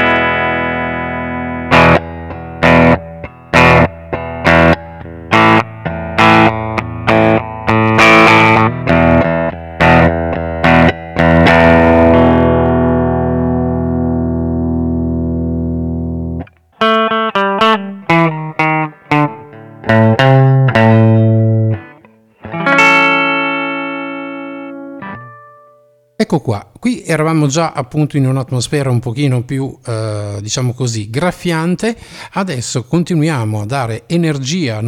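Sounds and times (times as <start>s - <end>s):
clean bright electric guitar playing rock chords: 0.0s - 26.2s
speech: 26.2s - 34.8s.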